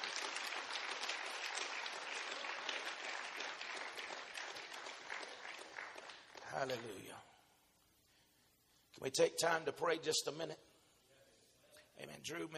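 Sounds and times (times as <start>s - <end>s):
congregation clapping and cheering: 0.0s - 7.2s
speech: 6.6s - 7.3s, 9.0s - 10.6s, 12.3s - 12.5s.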